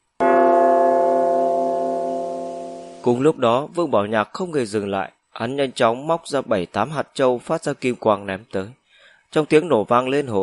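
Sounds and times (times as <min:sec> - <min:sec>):
large golden bell coming down with a booming strike: 0:00.2 - 0:03.1
speech: 0:03.0 - 0:10.4.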